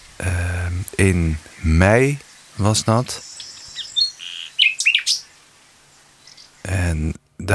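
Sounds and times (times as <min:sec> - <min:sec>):
speech: 0:00.2 - 0:03.3, 0:06.9 - 0:07.5
common nightingale singing in France: 0:00.8 - 0:06.7.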